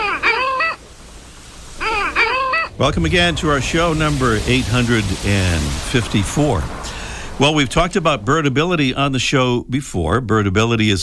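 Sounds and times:
long-tailed duck giving nasal yodeling calls: 0.0 - 1.0, 1.7 - 4.6
speech: 2.8 - 6.8, 7.4 - 11.0.

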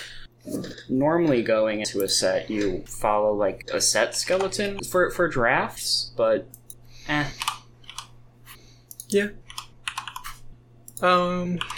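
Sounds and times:
speech: 0.9 - 7.4, 9.1 - 9.4, 11.0 - 11.7
fingers typing on a computer keyboard: 7.4 - 8.1, 8.9 - 11.7.

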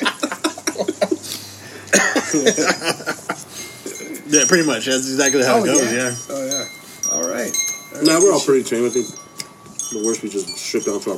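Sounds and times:
laughter: 0.0 - 4.2
person coughing: 1.9 - 2.5
speech: 2.0 - 3.2, 4.3 - 6.4, 8.0 - 9.2, 9.9 - 11.1.

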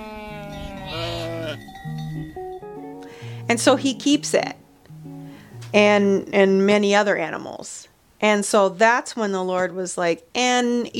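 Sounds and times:
sheep wavering bleat: 0.0 - 1.7
short steady musical tones: 0.6 - 6.1
speech: 3.5 - 4.6, 5.7 - 10.9.

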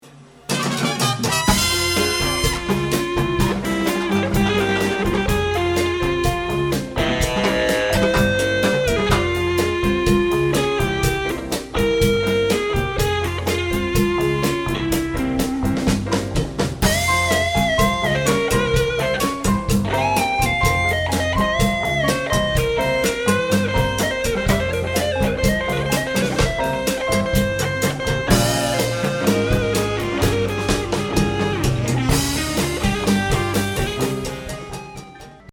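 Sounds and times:
smooth guitar playing: 0.4 - 35.5.

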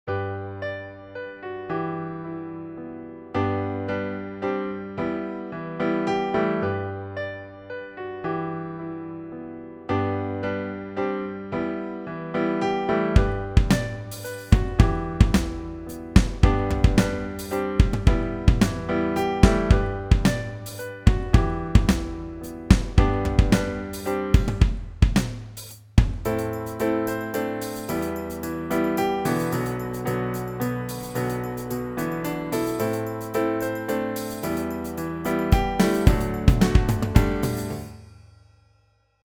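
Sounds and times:
piano roll piano notes: 0.1 - 24.8, 26.2 - 38.1.

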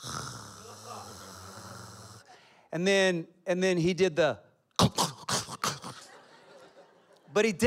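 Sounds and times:
person imitating a sleeping man's loud purring snore with their voice: 0.0 - 2.3, 4.8 - 6.1
speech: 2.7 - 5.0, 7.4 - 7.6
laughter: 5.8 - 7.6.

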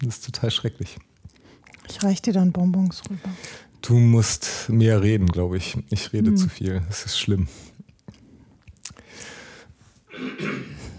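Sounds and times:
speech: 0.0 - 1.1, 1.9 - 7.7
soft mouth clicks and smacking noises: 0.1 - 10.1
person clearing a scratchy throat: 10.1 - 10.9.

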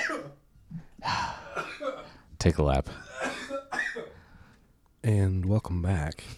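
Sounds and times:
person coughing from rice stuck in the throat: 0.0 - 0.4, 1.2 - 2.2, 2.9 - 4.2
speech: 2.4 - 3.1, 5.0 - 6.3.

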